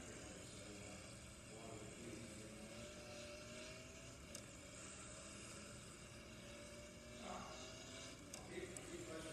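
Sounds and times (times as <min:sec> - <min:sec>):
video game race car engine humming: 0:00.0 - 0:09.3
voices from a call: 0:00.0 - 0:09.3.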